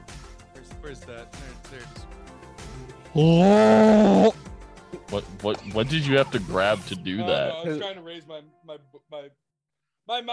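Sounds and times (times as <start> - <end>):
speech: 0.8 - 4.3, 5.1 - 9.4, 10.1 - 10.3
person imitating a big cat roar with a strained growly voice: 3.2 - 4.4, 7.2 - 7.7.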